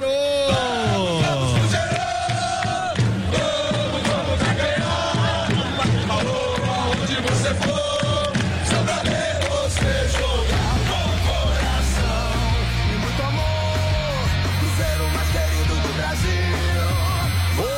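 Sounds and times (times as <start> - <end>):
shouts layered in the crowd: 0.0 - 3.0
stadium crowd of football supporters roaring and chanting at a match: 0.0 - 17.7.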